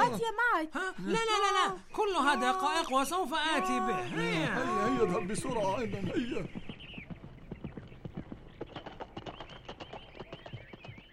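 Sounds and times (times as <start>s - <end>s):
speech: 0.2s - 6.7s
horse hooves clip-clopping: 3.6s - 11.1s.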